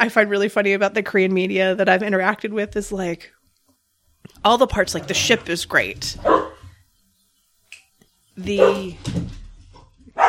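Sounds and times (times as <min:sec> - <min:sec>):
speech: 0:00.0 - 0:03.4, 0:04.3 - 0:06.5, 0:08.4 - 0:09.4
dog barking at another dog walking by the house: 0:06.2 - 0:06.7, 0:08.6 - 0:09.0.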